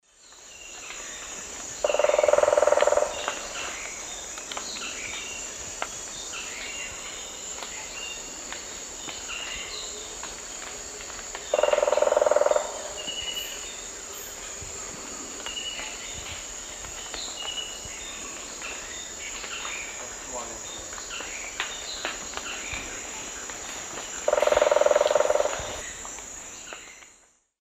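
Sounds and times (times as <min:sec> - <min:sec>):
Celeus elegans woodpecker drumming in the South American Eastern Lowlands: 0:01.4 - 0:05.3, 0:09.0 - 0:15.9, 0:16.6 - 0:26.0.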